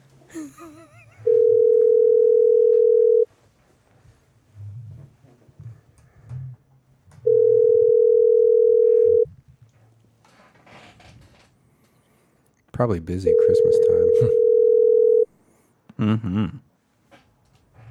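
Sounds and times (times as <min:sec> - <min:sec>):
speech: 0:00.4 - 0:01.1, 0:12.8 - 0:14.5, 0:16.0 - 0:16.6
telephone dial tone long steady beeps while placing a call: 0:01.3 - 0:03.3, 0:07.2 - 0:09.3, 0:13.3 - 0:15.3.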